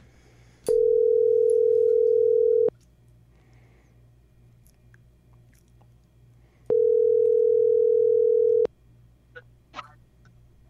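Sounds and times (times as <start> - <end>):
faint low hum: 0.0 - 10.6
ringback tones from an outgoing phone call: 0.7 - 2.7, 6.7 - 8.7.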